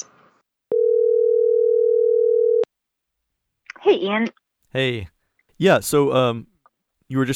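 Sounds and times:
telephone dial tone while calling back: 0:00.7 - 0:02.7
speech: 0:03.9 - 0:06.5, 0:07.1 - 0:07.3.

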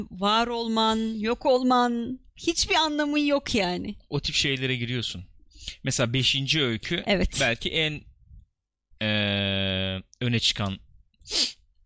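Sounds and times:
speech: 0:00.0 - 0:08.1, 0:09.0 - 0:11.6
person sneezing: 0:11.3 - 0:11.6.

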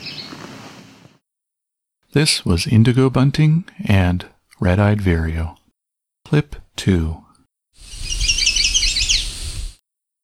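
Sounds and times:
speech: 0:02.1 - 0:05.6, 0:06.3 - 0:07.2
chestnut-sided warbler singing: 0:07.9 - 0:09.4.

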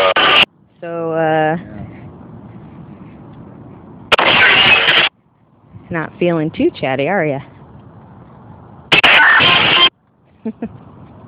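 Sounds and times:
passing cars: 0:00.0 - 0:11.2
speech: 0:05.9 - 0:07.5, 0:10.4 - 0:10.9.

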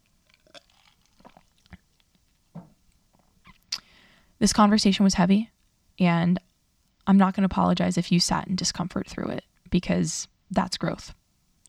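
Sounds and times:
person sipping coffee: 0:00.4 - 0:01.8
wet mouth clicks: 0:00.4 - 0:02.7, 0:03.4 - 0:03.9
speech: 0:04.4 - 0:06.5, 0:07.1 - 0:11.2.

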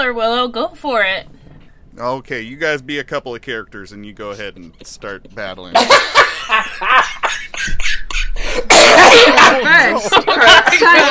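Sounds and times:
speech: 0:00.0 - 0:01.4, 0:02.0 - 0:11.1
person laughing: 0:04.4 - 0:11.1
person in loud coughing fit: 0:07.0 - 0:09.5.

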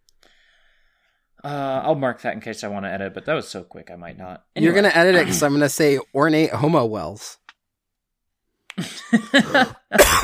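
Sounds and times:
speech: 0:01.4 - 0:07.4, 0:08.8 - 0:10.2
throaty coughs: 0:08.8 - 0:10.2.

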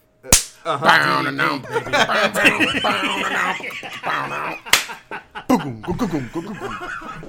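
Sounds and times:
hand slaps of a person high-fiving themselves: 0:00.3 - 0:00.6, 0:04.7 - 0:05.0
people chuckling and laughing: 0:00.7 - 0:07.2.

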